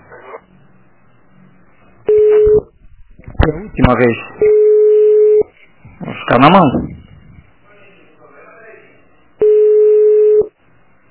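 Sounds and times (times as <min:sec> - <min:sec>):
telephone busy tone on a redialed call: 0:02.1 - 0:02.6, 0:04.4 - 0:05.4, 0:09.4 - 0:10.5
speech: 0:03.6 - 0:04.5, 0:06.3 - 0:06.9.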